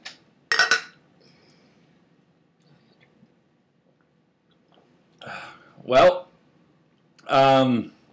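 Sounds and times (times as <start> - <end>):
beer glasses clinking in a toast: 0.5 - 1.0
speech: 5.2 - 6.2, 7.3 - 8.0.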